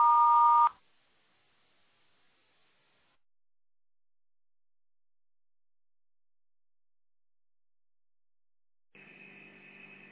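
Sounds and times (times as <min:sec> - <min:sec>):
answering machine beep: 0:00.0 - 0:00.7.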